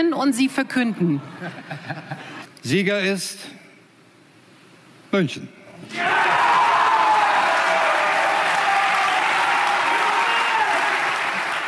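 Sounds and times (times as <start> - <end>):
speech: 0.0 - 3.6, 5.1 - 6.4
large crowd applauding: 5.9 - 11.6.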